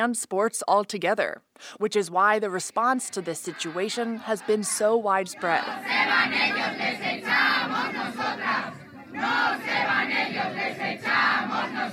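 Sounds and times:
speech: 0.0 - 11.9
large outdoor crowd chanting in unison: 2.6 - 11.9.

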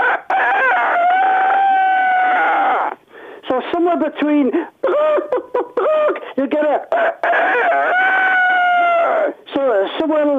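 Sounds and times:
person's voice imitating a cockerel crowing: 0.0 - 3.0, 6.8 - 9.4
speech: 3.7 - 8.0, 9.5 - 10.3.

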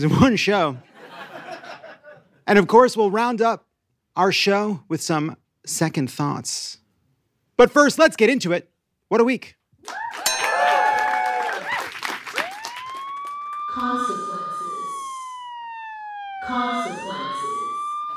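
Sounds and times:
speech: 0.0 - 0.9, 2.5 - 6.8, 7.6 - 10.0, 13.8 - 14.3
laughter: 0.8 - 2.4
siren sound effect: 10.3 - 18.1
voices chattering: 13.7 - 15.0.

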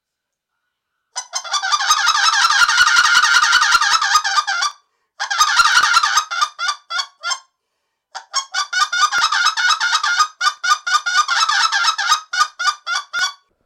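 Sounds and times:
goose call blown in honking clucks: 1.2 - 7.4, 8.2 - 13.5.

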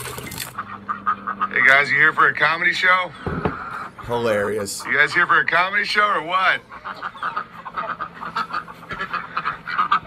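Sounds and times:
low outdoor rumble: 0.0 - 10.0
several ducks quacking: 0.0 - 10.0
speech: 1.6 - 3.5, 4.1 - 7.4.

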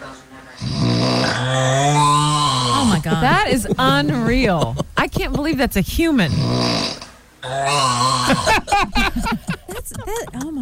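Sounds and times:
man with sleep apnea snoring heavily in his sleep: 0.6 - 3.0, 6.3 - 8.6
laughter: 2.8 - 5.9, 8.2 - 10.6
speech: 3.2 - 10.6.

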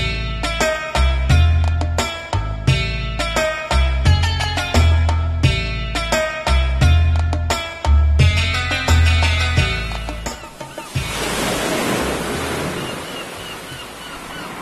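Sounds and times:
short melodic music passage with deep bass: 0.0 - 11.2
ocean waves breaking on a shore: 10.1 - 14.5.

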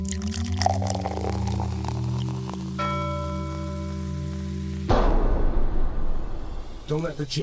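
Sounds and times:
liquid being poured out: 0.0 - 4.9
music: 0.0 - 7.4
speech: 6.9 - 7.4.

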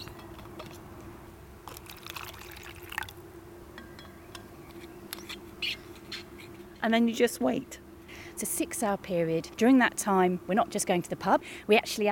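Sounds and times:
steady low outdoor hum: 0.0 - 12.1
soapy water pouring and splashing into shallow pan trap bowls: 1.7 - 3.2
speech: 6.8 - 7.8, 8.4 - 12.1.

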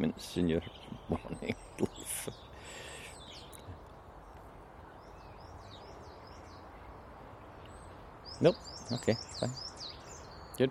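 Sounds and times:
speech: 0.0 - 2.9, 8.4 - 9.7
blackbird singing short fluting phrases: 0.0 - 10.7
wind-like outdoor noise: 0.0 - 10.7.

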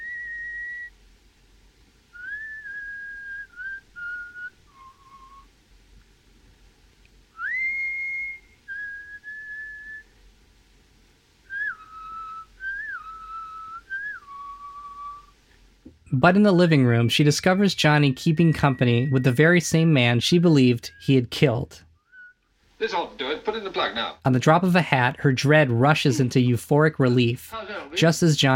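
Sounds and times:
man whistling a waltz tune: 0.0 - 0.9, 2.2 - 5.5, 7.4 - 10.0, 11.5 - 15.3, 18.2 - 19.4, 22.0 - 22.4
faint low hum: 0.0 - 28.5
speech: 16.2 - 21.9, 22.8 - 28.5.

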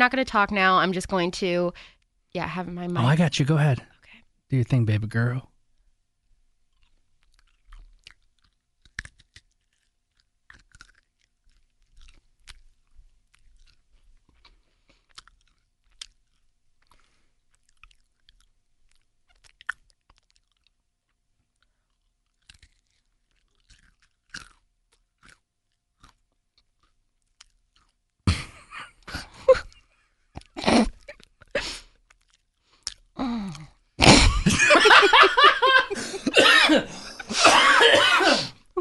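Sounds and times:
speech: 0.0 - 3.9, 4.5 - 5.5
chewing crunchy nuts: 5.8 - 28.2, 29.6 - 33.9
laughter: 34.1 - 38.0.

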